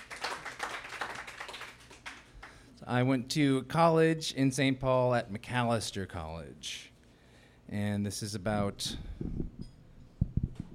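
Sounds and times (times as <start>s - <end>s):
crowd applauding with dense clapping: 0.0s - 2.5s
speech: 2.9s - 6.9s, 7.7s - 9.5s.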